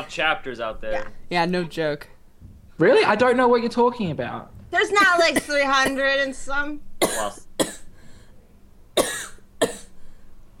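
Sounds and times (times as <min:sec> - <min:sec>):
speech: 0:00.0 - 0:02.2, 0:02.8 - 0:07.5
person coughing: 0:07.0 - 0:07.9, 0:09.0 - 0:09.9.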